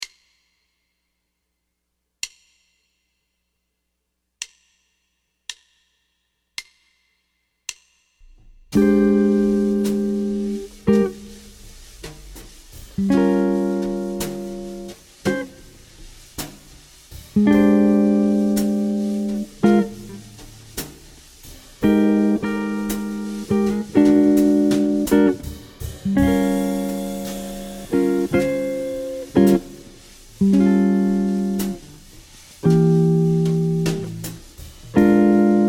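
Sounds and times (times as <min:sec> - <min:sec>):
jazz guitar playing a blues drop: 0:08.3 - 0:35.6.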